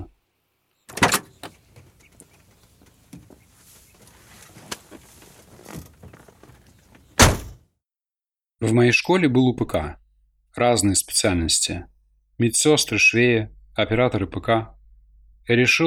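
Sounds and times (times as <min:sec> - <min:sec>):
rustling and shifting as someone settles into a car seat: 0:01.8 - 0:07.2
car door slamming at a hospital: 0:07.2 - 0:07.6
speech: 0:08.6 - 0:10.0, 0:10.6 - 0:14.8, 0:15.4 - 0:15.8.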